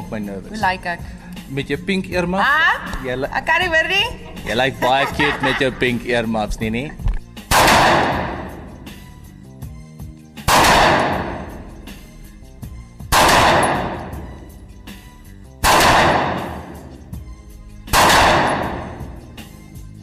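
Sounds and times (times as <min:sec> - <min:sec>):
speech: 0:00.1 - 0:07.0
laughter: 0:04.2 - 0:06.3
handgun gunfire aimed at targets at an outdoor shooting range: 0:07.5 - 0:08.6, 0:10.4 - 0:11.6, 0:13.1 - 0:14.3, 0:15.6 - 0:16.9, 0:17.9 - 0:19.1.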